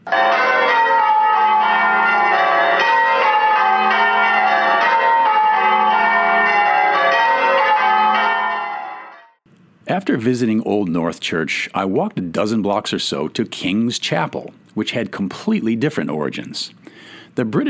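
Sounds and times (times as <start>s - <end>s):
peal of church bells rung after Sunday service: 0.0s - 9.4s
speech: 10.1s - 17.6s.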